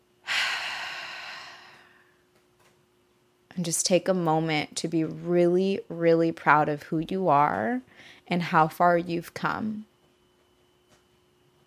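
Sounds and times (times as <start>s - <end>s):
deep breath in and out during a guided relaxation exercise: 0.2s - 2.2s
speech: 3.6s - 9.9s.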